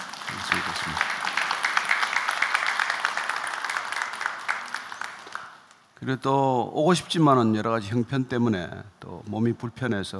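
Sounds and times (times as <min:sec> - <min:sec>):
church congregation applause at a worship service: 0:00.0 - 0:05.7
speech: 0:06.0 - 0:10.1.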